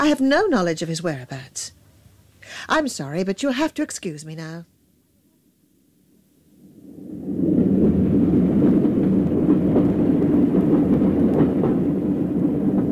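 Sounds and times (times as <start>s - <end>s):
speech: 0.0s - 1.8s, 2.5s - 4.7s
train rumbling along the rails: 6.8s - 12.9s.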